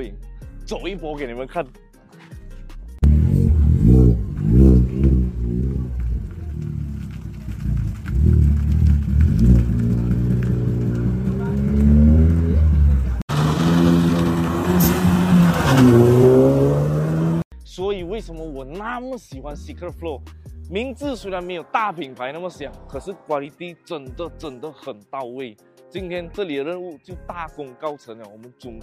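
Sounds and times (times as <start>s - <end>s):
speech: 0.0s - 2.2s, 18.2s - 28.8s
car engine revving: 3.0s - 17.4s.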